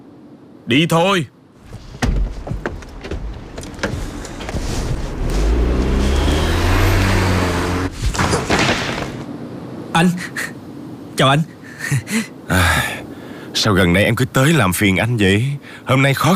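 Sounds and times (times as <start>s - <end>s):
speech: 0.7s - 1.4s, 10.0s - 10.5s, 11.2s - 13.0s, 13.6s - 16.3s
thud: 1.7s - 5.7s, 8.0s - 9.2s
low motor hum: 1.7s - 8.2s
car doors opening and closing as people get into a car: 1.7s - 9.2s.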